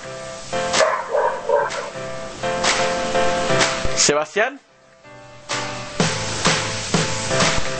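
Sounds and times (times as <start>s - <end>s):
hiss: 0.0s - 7.7s
dog barking and yelping: 0.8s - 2.0s
speech: 4.0s - 4.7s.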